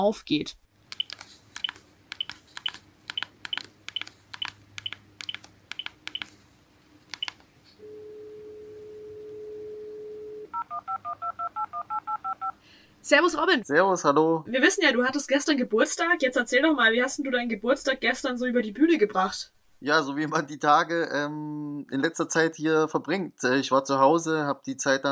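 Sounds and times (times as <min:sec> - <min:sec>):
speech: 0:00.0 - 0:00.6, 0:13.1 - 0:25.1
telephone keypad tone beeps dialing a number: 0:01.0 - 0:06.3, 0:07.1 - 0:07.4
telephone ringing tone: 0:07.2 - 0:12.6.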